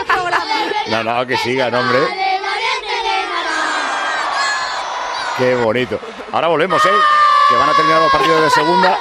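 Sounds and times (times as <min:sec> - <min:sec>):
speech: 0:00.9 - 0:02.2, 0:05.4 - 0:09.0
stadium crowd cheering a penalty goal at a football match: 0:02.5 - 0:09.0.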